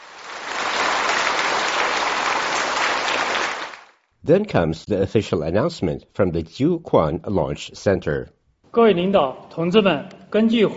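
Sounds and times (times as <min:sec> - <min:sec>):
engineers and scientists applauding in control center: 0:00.0 - 0:04.0
speech: 0:04.3 - 0:10.7.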